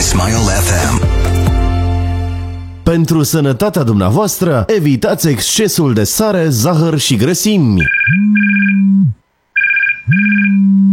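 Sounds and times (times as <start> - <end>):
speech: 0.1 - 1.4, 2.9 - 9.2, 10.1 - 10.9
telephone with long electronic ring: 7.8 - 8.9, 9.6 - 10.7.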